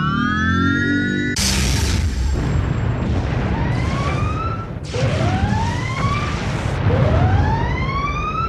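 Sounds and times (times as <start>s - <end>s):
spaceship alarm siren wailing: 0.0s - 1.4s, 3.4s - 8.4s
dense rumbling background: 1.4s - 8.4s
heavy booming blasts: 1.4s - 8.4s.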